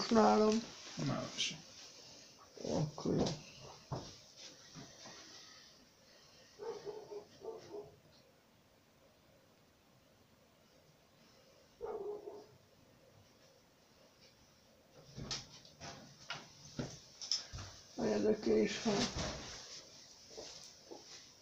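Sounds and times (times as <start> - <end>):
speech: 0.1 - 1.7, 2.6 - 4.2, 18.2 - 19.4
dog barking: 6.6 - 8.0, 11.8 - 12.6.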